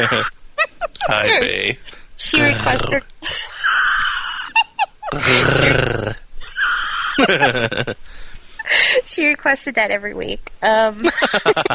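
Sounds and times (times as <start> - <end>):
person imitating an animal growl: 0.0 - 0.3, 1.0 - 1.8, 2.4 - 3.0, 5.1 - 6.2, 7.0 - 8.0
speech: 0.0 - 0.4, 1.0 - 3.6, 5.1 - 6.2, 7.2 - 11.7
laughter: 0.0 - 9.1, 11.0 - 11.7
breaths: 8.0 - 9.1.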